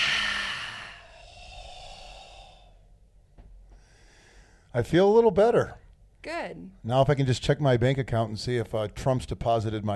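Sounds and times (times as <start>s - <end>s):
forceful breathy exhale: 0.0s - 2.9s
speech: 4.7s - 9.9s.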